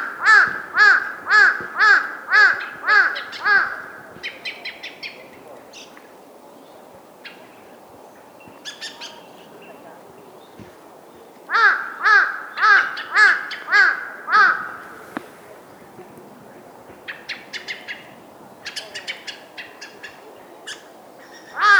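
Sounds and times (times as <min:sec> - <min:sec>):
crow giving harsh caws: 0:00.0 - 0:04.0, 0:11.5 - 0:15.0, 0:21.6 - 0:21.7.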